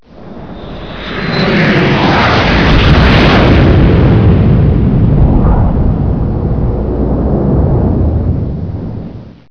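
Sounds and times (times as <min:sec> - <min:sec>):
jet airliner: 0:00.0 - 0:09.4.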